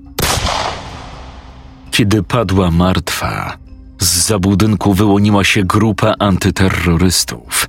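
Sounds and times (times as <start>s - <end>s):
pistol gunshot: 0.2s - 1.8s
speech: 2.0s - 7.6s.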